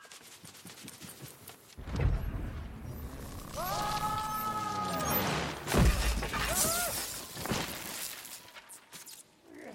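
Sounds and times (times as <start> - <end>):
heavy crash of breaking debris: 1.8 - 8.4
eerie creaking: 2.0 - 6.6
shattering in an earthquake: 5.0 - 8.5.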